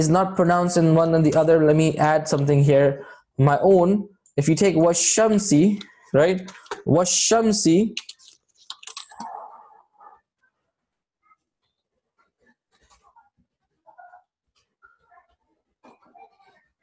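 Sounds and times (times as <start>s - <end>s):
speech: 0.0s - 8.2s
keys struck on an off-centre computer keyboard: 8.0s - 9.4s.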